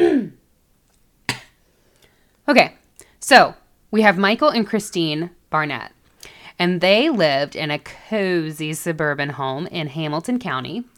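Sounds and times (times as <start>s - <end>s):
person clearing throat: 0.0s - 0.5s, 1.3s - 1.6s
speech: 2.5s - 10.9s.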